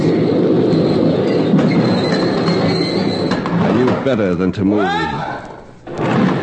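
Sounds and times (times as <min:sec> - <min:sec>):
thin sustained metallic train wheel squeal: 0:00.0 - 0:03.8
train rumbling into a station: 0:00.0 - 0:04.2
speech: 0:04.1 - 0:05.2.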